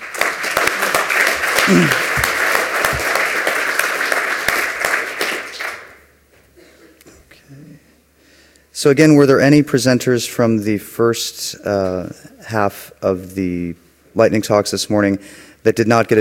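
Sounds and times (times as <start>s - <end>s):
audience applause after a lightning talk at a technical session: 0.0s - 6.0s
speech: 1.7s - 2.0s, 8.8s - 16.2s.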